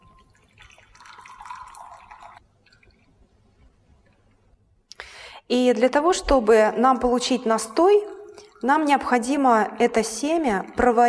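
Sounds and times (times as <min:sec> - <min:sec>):
faint water trickles: 0:00.0 - 0:03.4, 0:06.1 - 0:11.0
boiling water poured over flax seeds in a container: 0:00.2 - 0:03.1, 0:06.8 - 0:11.0
speech: 0:05.5 - 0:11.0.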